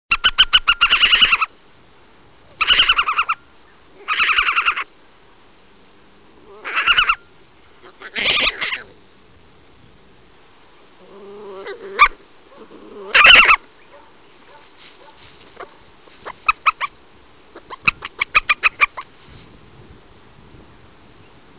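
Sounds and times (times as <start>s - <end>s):
Meles meles calling: 0.1s - 1.5s, 2.5s - 4.9s, 6.5s - 8.9s, 11.0s - 19.1s.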